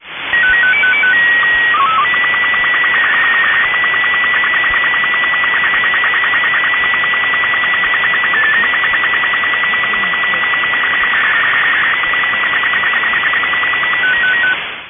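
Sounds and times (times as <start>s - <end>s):
SSTV signal tones received by radio: 0.3s - 14.6s.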